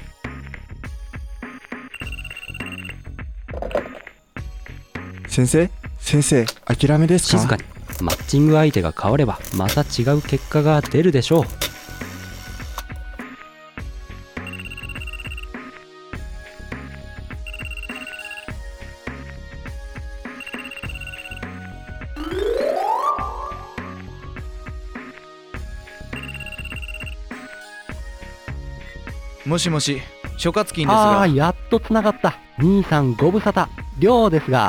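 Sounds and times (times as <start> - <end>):
mobile phone ringing with looping electronic melody: 1.8 - 4.0, 14.4 - 15.6, 17.4 - 18.6, 20.3 - 24.0, 26.1 - 27.2
speech: 3.6 - 4.0, 5.3 - 11.6, 29.6 - 34.6.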